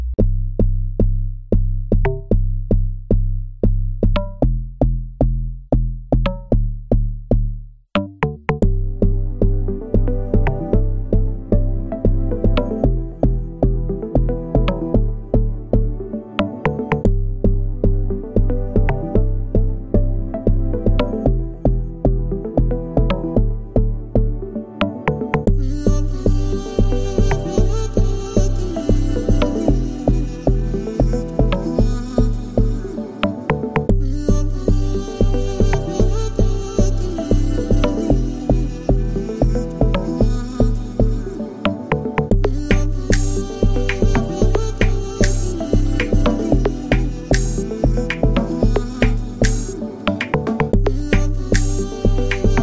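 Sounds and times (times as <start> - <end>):
afrobeat instrumental worship soundscape: 0.2 - 52.6.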